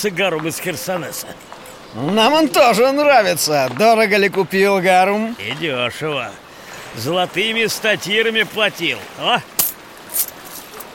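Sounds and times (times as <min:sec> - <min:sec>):
speech: 0:00.0 - 0:09.5, 0:10.1 - 0:10.3
copper coin striking a hard surface: 0:09.6 - 0:10.9.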